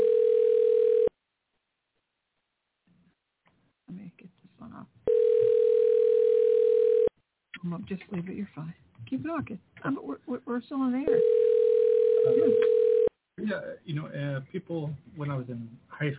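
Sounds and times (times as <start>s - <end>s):
telephone ringing with an electronic ring: 0.0s - 1.1s, 5.1s - 7.1s, 11.1s - 13.1s
speech: 7.8s - 11.6s, 12.2s - 12.8s, 13.4s - 16.1s.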